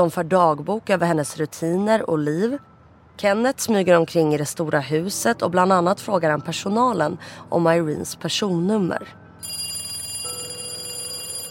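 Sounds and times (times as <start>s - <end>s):
speech: 0.0s - 9.2s
telephone ringing with a shrill electronic trill: 9.4s - 11.5s.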